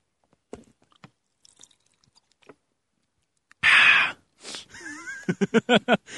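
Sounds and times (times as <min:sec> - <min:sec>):
person gulping and swallowing water: 0:00.6 - 0:02.6
laughter: 0:04.7 - 0:06.1
speech: 0:05.3 - 0:06.1.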